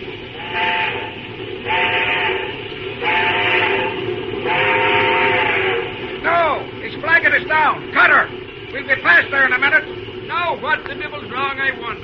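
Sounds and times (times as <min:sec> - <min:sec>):
rumbling, hissing steam locomotive engine noise: 0:00.0 - 0:12.0
steam locomotive whistle blasts: 0:00.3 - 0:06.1
speech: 0:08.8 - 0:12.0.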